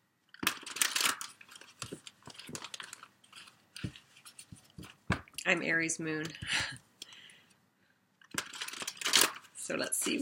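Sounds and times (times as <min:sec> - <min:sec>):
tarot cards being shuffled and drawn for a Celtic cross spread: 0:00.4 - 0:05.4, 0:08.3 - 0:10.1
speech: 0:05.5 - 0:06.7, 0:09.7 - 0:10.1.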